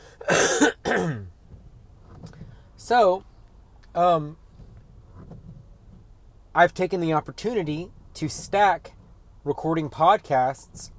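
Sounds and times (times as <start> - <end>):
person coughing: 0.2 - 1.3
throat clearing: 0.2 - 1.3
speech: 2.9 - 3.3, 4.0 - 4.4, 6.6 - 10.9.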